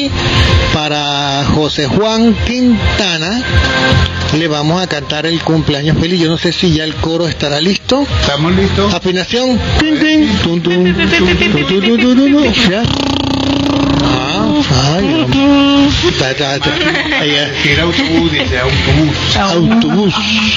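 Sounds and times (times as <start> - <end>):
speech: 0.0 - 13.3, 14.0 - 20.5
voice imitating a bus engine as a breathing exercise: 9.8 - 16.3
laughter: 9.8 - 20.5.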